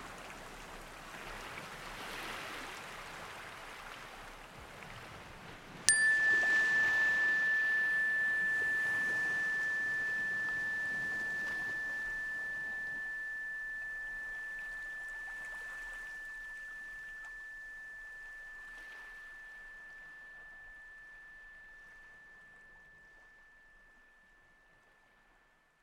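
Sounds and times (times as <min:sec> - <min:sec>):
meditation chime struck to end a guided meditation: 0:05.9 - 0:25.5
soft steady wash: 0:05.9 - 0:25.8.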